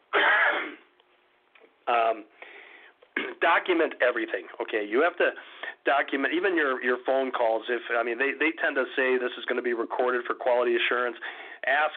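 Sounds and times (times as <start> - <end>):
person coughing: 0.1 - 0.9, 3.2 - 3.4
speech: 1.9 - 2.5, 3.4 - 11.9.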